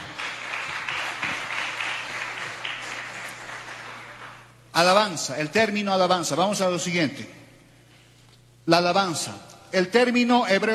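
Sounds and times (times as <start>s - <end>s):
crowd applauding: 0.0s - 4.6s
low steady hum: 0.0s - 10.7s
speech: 4.8s - 7.4s, 8.7s - 10.7s.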